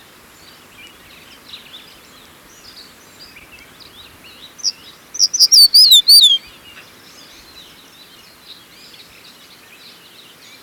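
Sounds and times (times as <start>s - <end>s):
faint background hiss: 0.0s - 10.6s
crested bunting song: 5.2s - 6.4s.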